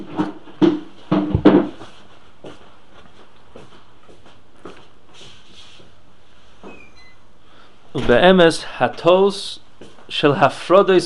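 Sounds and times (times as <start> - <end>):
knocks and rattles: 0.0 - 1.8
speech: 8.1 - 11.0.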